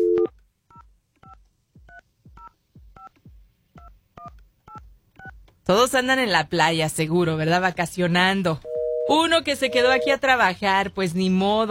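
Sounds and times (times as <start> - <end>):
speech: 5.7 - 11.6
telephone keypad tones as a number is dialed: 8.7 - 10.1.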